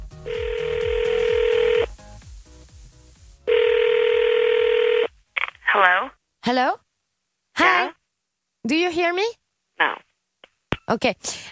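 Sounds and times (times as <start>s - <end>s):
low rhythmic pulse: 0.0s - 3.0s
ringback tone of an outgoing phone call: 0.3s - 1.9s, 3.5s - 5.1s
speech: 6.5s - 6.8s, 7.6s - 8.0s, 8.6s - 10.0s, 10.9s - 11.5s.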